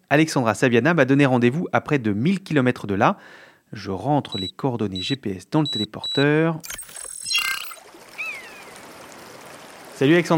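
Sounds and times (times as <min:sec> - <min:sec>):
speech: 0:00.1 - 0:07.0, 0:10.0 - 0:10.3
high chirp: 0:04.3 - 0:08.7
river flowing in the Orbiel valley near Carcassonne France: 0:07.8 - 0:10.3.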